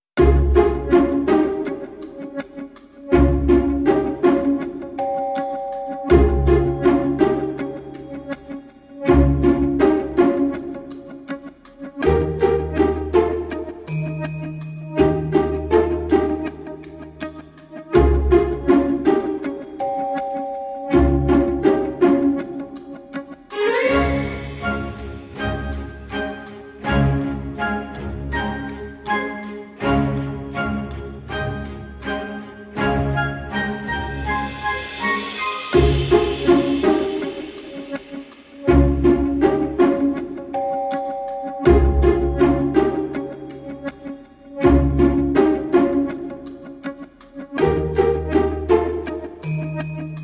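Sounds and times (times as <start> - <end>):
percussion: 0.0 - 50.2.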